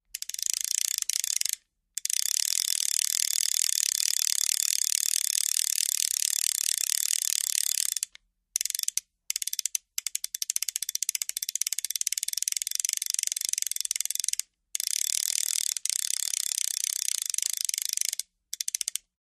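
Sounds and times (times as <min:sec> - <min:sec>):
fly fishing reel: 0:00.2 - 0:19.1.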